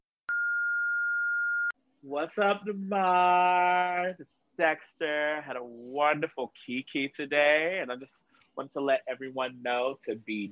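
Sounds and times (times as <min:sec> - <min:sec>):
voicemail beep: 0:00.3 - 0:01.8
speech: 0:02.0 - 0:10.5.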